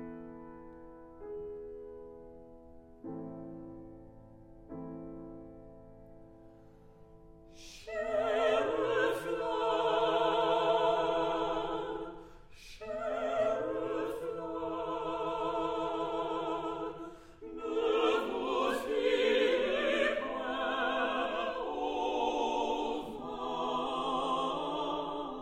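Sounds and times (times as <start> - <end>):
vocal quartet singing chansons: 7.6 - 25.4.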